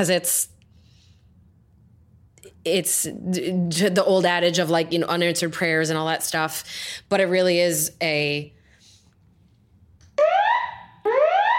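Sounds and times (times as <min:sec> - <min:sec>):
speech: 0:00.0 - 0:00.6, 0:02.6 - 0:08.6
fire alarm sounding rising electronic whoops: 0:10.2 - 0:11.5.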